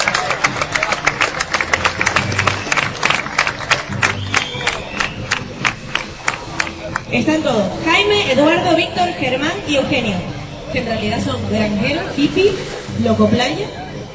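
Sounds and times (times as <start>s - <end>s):
crowd applauding: 0.0s - 7.1s
speech: 7.1s - 14.1s.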